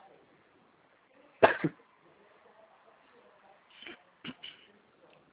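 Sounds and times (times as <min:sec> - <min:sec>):
person coughing: 0:01.4 - 0:01.8, 0:03.8 - 0:04.7.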